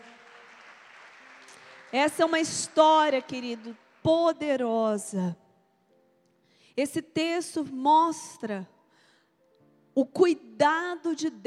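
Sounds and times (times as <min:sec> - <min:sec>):
congregation clapping: 0:00.0 - 0:04.5
speech: 0:01.9 - 0:05.4, 0:06.8 - 0:08.8, 0:10.0 - 0:11.4.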